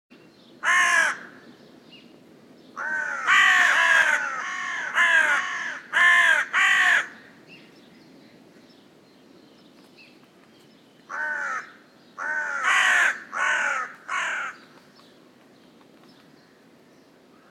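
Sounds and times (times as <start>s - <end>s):
carrion crow Corvus corone cawing: 0.6s - 1.4s, 2.8s - 7.3s, 11.1s - 14.7s.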